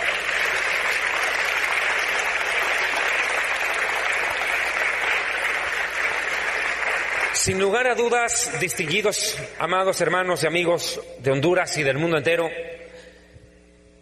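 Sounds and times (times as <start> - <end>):
crowd applauding in a large room: 0.0 - 10.0
speech: 7.4 - 12.7.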